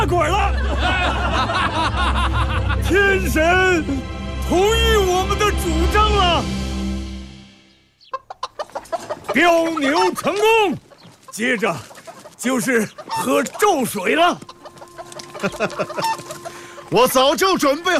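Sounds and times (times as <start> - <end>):
laughter: 0.0 - 3.9, 14.7 - 16.9
speech: 0.0 - 6.6, 9.3 - 10.8, 11.4 - 14.5, 15.4 - 17.9
large rooster clucking and squawking: 8.0 - 13.6, 14.4 - 16.9.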